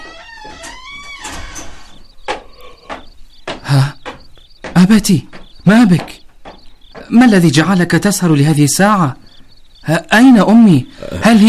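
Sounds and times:
door creaking as it swings: 0.0 - 7.7
speech: 3.7 - 4.0, 4.8 - 6.2, 7.1 - 9.2, 9.8 - 11.4.

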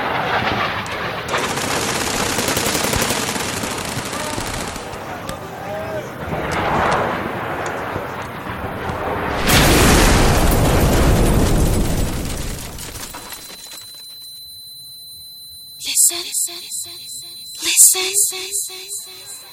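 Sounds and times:
loud explosion: 0.0 - 2.5, 6.1 - 13.3
voices: 2.9 - 8.6, 15.8 - 19.5
thin steady high-pitched ringing: 13.1 - 19.5.

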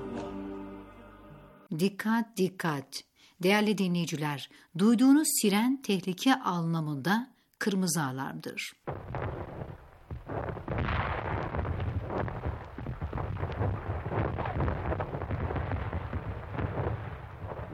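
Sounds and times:
speech: 1.7 - 9.4
missile explosions: 8.9 - 17.7.

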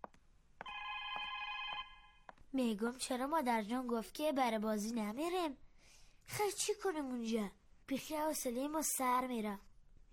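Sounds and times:
telephone ringing with electronic ring: 0.6 - 2.3
speech: 2.5 - 5.6, 6.3 - 10.1.

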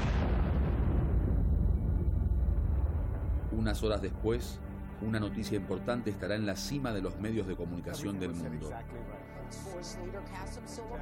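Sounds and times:
heavy explosion: 0.0 - 5.0
speech: 3.6 - 10.9.

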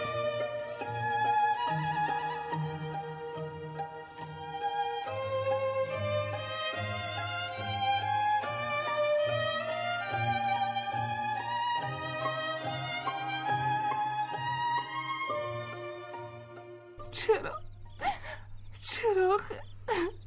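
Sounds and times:
soft sustained music: 0.0 - 20.2
speech: 17.2 - 17.6
woman sobbing: 17.2 - 18.5, 19.9 - 20.2.

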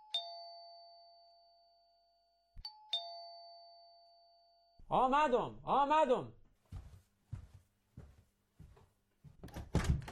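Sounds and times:
two-tone doorbell chiming: 0.0 - 4.8
speech: 4.9 - 6.4.

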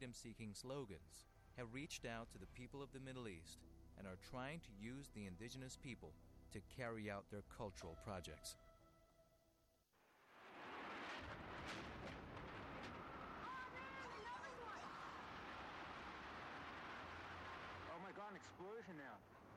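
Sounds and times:
speech: 0.0 - 8.6, 18.4 - 19.5
loud explosion: 10.1 - 14.2, 14.8 - 18.4.

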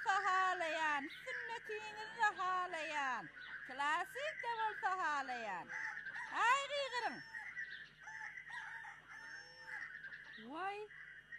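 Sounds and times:
steady humming background: 0.0 - 11.3
speech: 1.1 - 7.3, 10.4 - 11.0
rooster crowing: 5.6 - 10.1.

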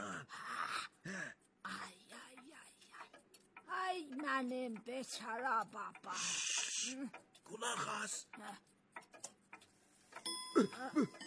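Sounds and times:
clock ticks: 0.0 - 11.2
speech: 4.2 - 8.7, 10.6 - 11.2
clock ringing chime announcing bedtime: 10.2 - 11.2.

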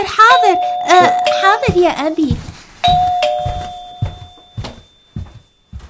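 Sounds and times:
bright doorbell chime: 0.2 - 1.9, 2.8 - 5.4
rhythmic jingly tune: 0.2 - 1.9, 2.8 - 5.1
speech: 0.4 - 3.1.

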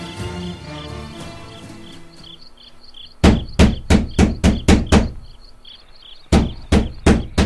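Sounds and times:
loud sharp knocks on a wooden door: 3.2 - 5.4, 6.3 - 7.4.

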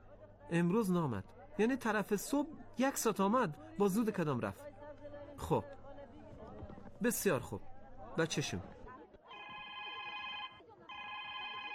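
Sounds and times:
speech: 0.5 - 4.7, 5.4 - 5.8, 7.0 - 8.8
telephone ringing with bright electronic tone: 9.3 - 11.7.

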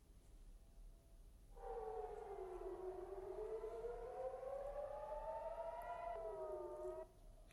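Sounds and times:
air raid siren wailing in Tel Aviv after a ballistic missile strike from Yemen: 1.6 - 7.2.

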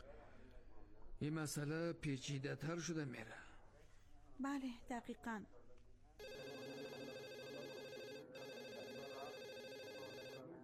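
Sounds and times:
speech: 1.2 - 3.5, 4.4 - 5.6
telephone ringing with a bright buzzing electronic tone: 6.2 - 10.6.

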